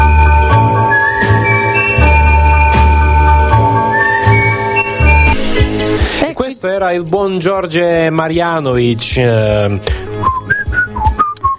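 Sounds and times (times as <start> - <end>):
whistled tune: 0.0 - 5.4, 10.2 - 11.5
speech: 6.8 - 10.0.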